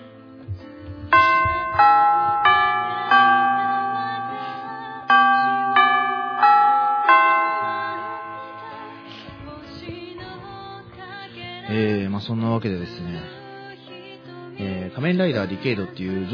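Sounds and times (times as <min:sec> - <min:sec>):
chime ringing: 0:01.2 - 0:10.1
speech: 0:01.8 - 0:02.1, 0:12.3 - 0:13.4, 0:14.9 - 0:16.3.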